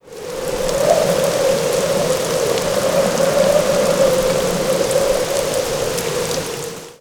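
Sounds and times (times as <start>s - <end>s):
moderate to heavy rain: 0.0s - 6.9s
strong wind: 0.0s - 6.9s.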